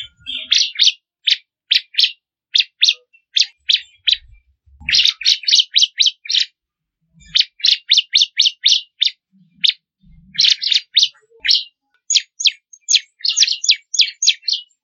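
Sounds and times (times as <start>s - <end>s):
Bar-winged prinia singing quick sharp high-pitched chips: 0.0s - 4.3s, 4.9s - 6.6s, 7.2s - 9.8s, 10.4s - 14.8s
faint low thumps: 4.1s - 5.0s.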